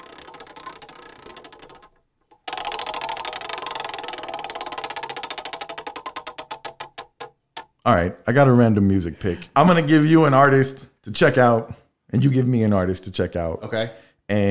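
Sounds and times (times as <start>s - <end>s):
spinning wheel clicking: 0.0s - 7.8s
speech: 7.9s - 14.4s.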